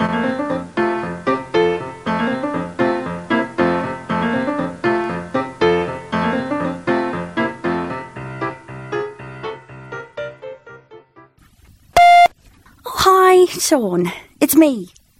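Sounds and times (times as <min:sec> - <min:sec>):
gentle instrumental music with plucked-sounding notes: 0:00.0 - 0:11.6
electronic answering machine beep: 0:12.0 - 0:12.3
speech: 0:13.7 - 0:15.1.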